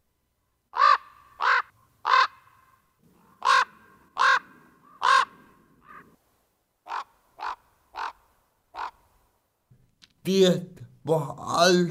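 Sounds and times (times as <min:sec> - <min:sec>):
common raven croaking: 0:00.7 - 0:06.2, 0:06.8 - 0:09.1
speech: 0:10.3 - 0:11.9.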